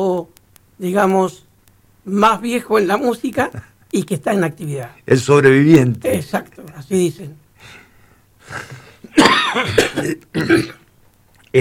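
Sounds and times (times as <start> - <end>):
speech: 0.0 - 7.8, 8.5 - 10.8
person coughing harshly: 8.5 - 10.8.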